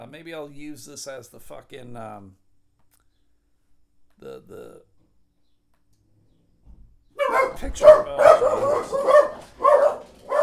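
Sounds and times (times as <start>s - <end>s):
speech: 0.1s - 2.4s, 4.2s - 4.9s, 7.4s - 9.6s
dog barking: 7.2s - 10.4s.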